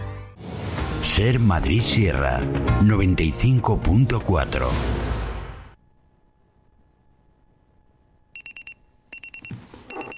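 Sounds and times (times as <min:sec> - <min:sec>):
speech: 0:01.1 - 0:05.1
electronic alarm clock beeping: 0:08.4 - 0:10.1.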